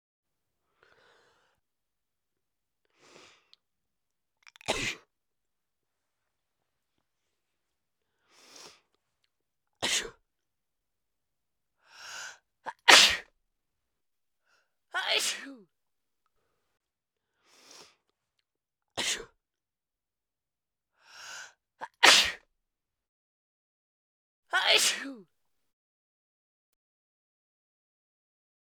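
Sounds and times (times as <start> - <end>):
woman sneezing: 4.6 - 5.0, 12.7 - 13.3, 15.0 - 15.6, 21.8 - 22.4, 24.5 - 25.2.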